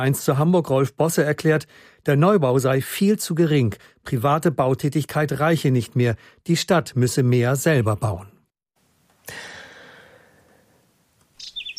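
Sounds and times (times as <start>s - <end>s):
speech: 0.0s - 8.4s
whinchat chirping: 11.2s - 11.7s.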